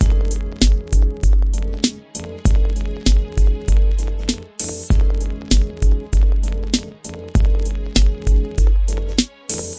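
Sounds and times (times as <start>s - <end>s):
straight ahead crackle hop drum loops and breaks at 98 bpm: 0.0s - 9.7s.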